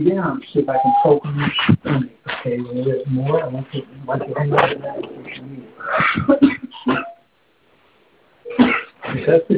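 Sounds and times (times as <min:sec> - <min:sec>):
speech: 0:00.0 - 0:06.6, 0:09.2 - 0:09.5
person coughing after lying down: 0:05.8 - 0:07.2, 0:08.5 - 0:09.3.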